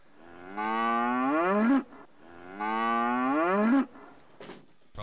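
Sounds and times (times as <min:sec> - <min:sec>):
cow mooing: 0:00.2 - 0:04.1.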